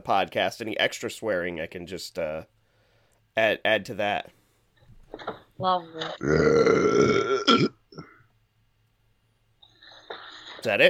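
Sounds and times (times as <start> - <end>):
speech: 0.0 - 2.6, 3.4 - 4.4, 5.1 - 8.1, 10.6 - 10.8
throaty sound: 6.0 - 8.2
man burping: 6.2 - 8.2.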